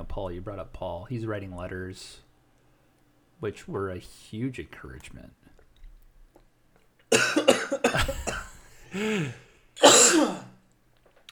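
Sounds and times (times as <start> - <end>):
speech: 0.2 - 2.3, 3.4 - 5.5, 8.9 - 10.5
person coughing after coffee went down the wrong pipe: 7.1 - 10.6.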